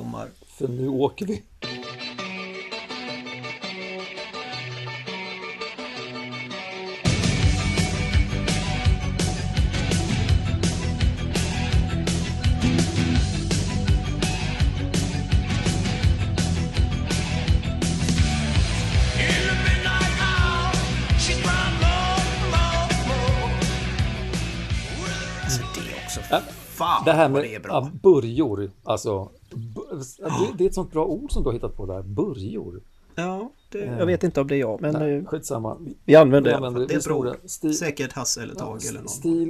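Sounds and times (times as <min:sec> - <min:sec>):
speech: 0:00.2 - 0:01.5, 0:27.1 - 0:39.4
loud punk rock with driving drums and distorted guitars: 0:01.6 - 0:27.4
vocalist shouting and screaming: 0:25.0 - 0:26.5.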